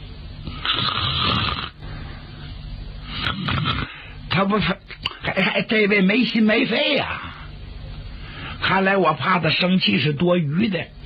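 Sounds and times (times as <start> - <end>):
voice imitating snoring of someone dozing in a chair: 0.5 - 1.8, 3.1 - 4.1
speech: 4.4 - 4.8, 5.4 - 7.2, 8.7 - 11.0.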